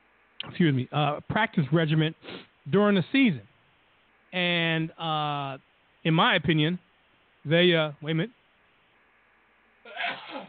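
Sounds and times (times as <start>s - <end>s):
speech: 0.6s - 3.5s, 4.3s - 6.8s, 7.4s - 8.4s
sneeze: 9.9s - 10.4s.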